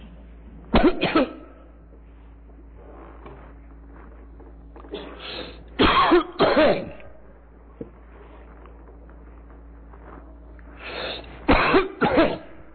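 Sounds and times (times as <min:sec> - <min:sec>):
faint low hum: 0:00.0 - 0:12.7
person coughing insistently and harshly: 0:00.7 - 0:01.8, 0:04.9 - 0:07.2, 0:11.4 - 0:12.7.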